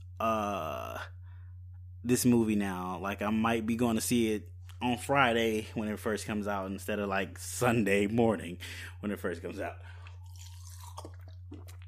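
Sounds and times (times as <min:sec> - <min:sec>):
steady low electrical hum: 0:00.0 - 0:11.8
speech: 0:02.0 - 0:10.0
person sipping and swallowing water: 0:09.8 - 0:11.8.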